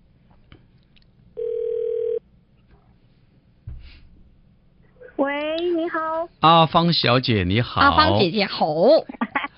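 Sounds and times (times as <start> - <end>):
electronic phone ringback tone as a call connects: 1.4 - 2.2
soft thump: 3.6 - 4.0
speech: 5.2 - 9.2.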